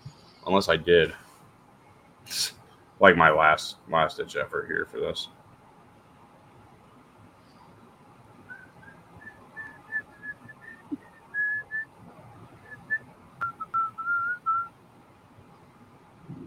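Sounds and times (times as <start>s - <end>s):
faint low hum: 0.0s - 16.4s
speech: 0.5s - 1.2s, 2.3s - 5.4s
person whistling a simple short melody: 8.5s - 11.9s, 12.7s - 14.7s.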